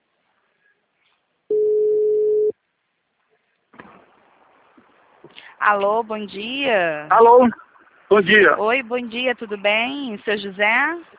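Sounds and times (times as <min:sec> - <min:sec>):
telephone ringback tone on an outgoing call: 0:01.5 - 0:02.5
speech: 0:05.6 - 0:11.1.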